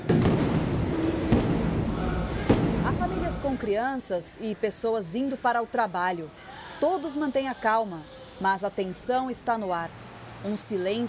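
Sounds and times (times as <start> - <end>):
dull explosion booms: 0.0 - 3.6
constant low rumbling background: 0.0 - 3.7
speech: 3.4 - 11.0.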